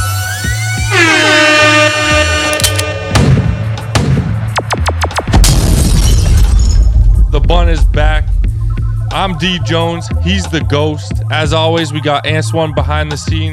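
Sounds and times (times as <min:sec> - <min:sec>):
loud air horn blasts: 0:00.6 - 0:03.8
sharp impact hit sound effects: 0:02.6 - 0:08.9
crashing sound effects: 0:03.2 - 0:08.4
speech: 0:07.5 - 0:08.3, 0:09.2 - 0:13.5.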